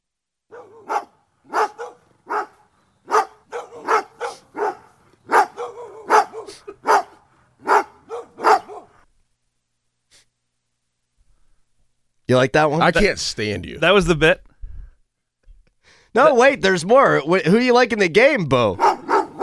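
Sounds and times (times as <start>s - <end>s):
dog barking: 0.5s - 9.0s, 18.8s - 19.4s
speech: 12.3s - 14.5s, 16.2s - 18.8s.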